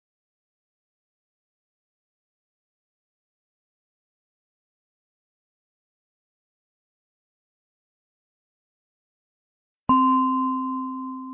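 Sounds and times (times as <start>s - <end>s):
meditation bell ringing: 9.9s - 11.3s.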